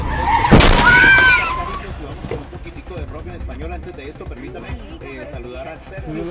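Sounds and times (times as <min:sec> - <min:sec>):
tires skidding: 0:00.0 - 0:02.6
traffic noise: 0:00.0 - 0:03.0
indistinct voices talking: 0:00.0 - 0:06.2
car crashing into a motorcycle: 0:00.3 - 0:02.5.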